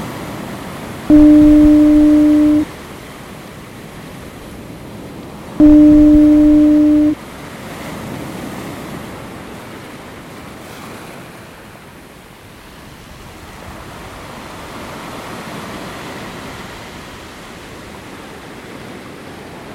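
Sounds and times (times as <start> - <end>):
lighthouse foghorn steady low tone: 1.1 - 2.6, 5.6 - 7.2.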